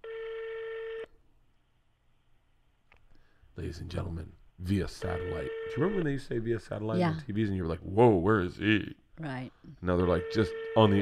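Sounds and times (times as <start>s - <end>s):
European telephone ringing tone: 0.0s - 1.1s, 5.1s - 6.0s, 10.0s - 11.0s
speech: 3.6s - 11.0s.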